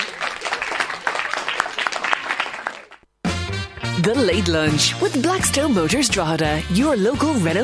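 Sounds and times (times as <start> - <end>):
crowd cheering and clapping: 0.0 - 4.0
speech: 4.0 - 7.6.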